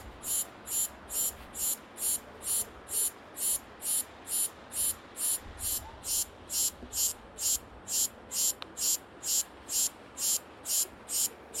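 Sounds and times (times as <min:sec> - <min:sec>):
cicada song in a park: 0:00.0 - 0:11.5.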